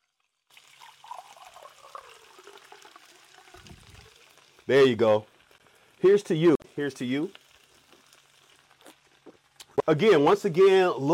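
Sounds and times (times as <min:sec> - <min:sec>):
fresh water pouring into a glass: 0:00.0 - 0:04.5
speech: 0:04.7 - 0:05.3, 0:06.0 - 0:07.4, 0:09.9 - 0:11.1.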